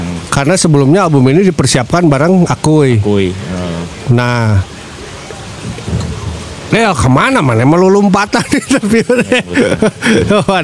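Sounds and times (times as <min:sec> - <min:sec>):
steady rain pouring down: 0:00.0 - 0:10.6
speech: 0:00.4 - 0:04.8, 0:06.7 - 0:10.6
thunder: 0:05.6 - 0:06.7
laughter: 0:08.2 - 0:10.6.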